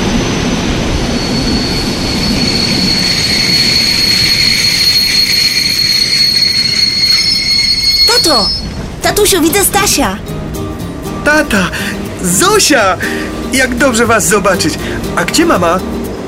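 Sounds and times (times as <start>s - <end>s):
train rolling into a station: 0.0s - 16.2s
high metallic squeal of train brakes: 1.0s - 9.0s
speech: 8.3s - 8.6s, 9.2s - 10.3s, 11.3s - 16.0s.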